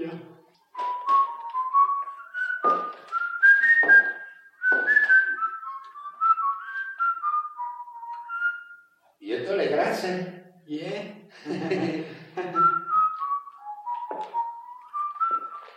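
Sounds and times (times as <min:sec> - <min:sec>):
person whistling a bouncy tune: 0:00.7 - 0:09.0, 0:12.4 - 0:15.7
laughter: 0:11.4 - 0:12.9.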